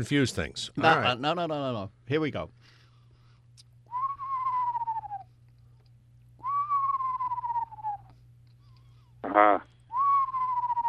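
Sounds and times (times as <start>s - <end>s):
speech: 0.0s - 2.6s
faint low hum: 0.0s - 10.8s
person whistling an imitation of an eastern screech owl: 3.9s - 5.3s, 6.4s - 8.1s, 9.9s - 10.8s.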